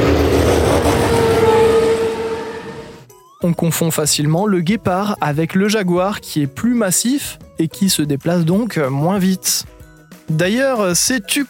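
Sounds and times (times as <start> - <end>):
car speeding past on a highway: 0.0 - 3.1
speech: 3.4 - 11.4.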